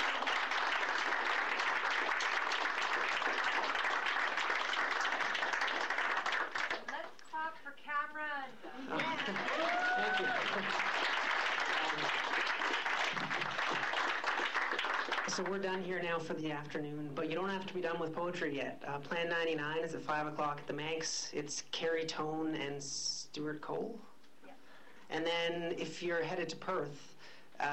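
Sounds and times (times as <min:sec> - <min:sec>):
audience applauding for a poet at an afternoon poetry reading: 0:00.0 - 0:07.1, 0:08.9 - 0:15.5
speech: 0:08.5 - 0:10.9, 0:15.4 - 0:24.1, 0:25.2 - 0:27.7.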